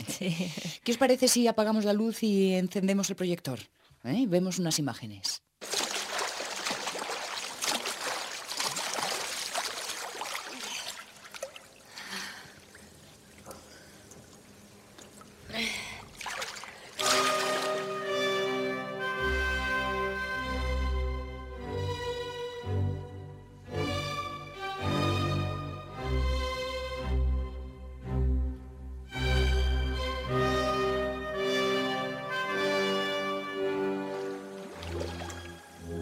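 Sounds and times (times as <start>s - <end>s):
speech: 0.2s - 5.5s
flowing water rushing: 5.6s - 14.4s, 16.1s - 18.3s, 34.0s - 36.0s
sustained orchestral film music: 17.0s - 36.0s.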